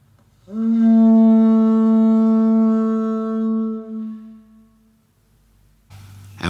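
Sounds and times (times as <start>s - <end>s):
ivory trumpet from the Congo played with finger hole closed: 0.5s - 5.0s.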